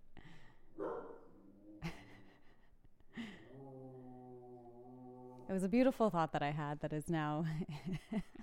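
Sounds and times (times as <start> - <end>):
dog growling: 1.0 - 2.2, 3.2 - 5.7
speech: 5.5 - 8.4
laughter: 7.4 - 8.4.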